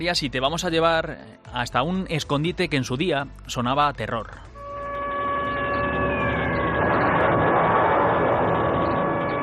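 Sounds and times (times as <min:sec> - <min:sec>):
speech: 0:00.0 - 0:04.5
1930s air-raid siren wailing: 0:04.6 - 0:09.4
broad rumbling wash: 0:05.7 - 0:09.4.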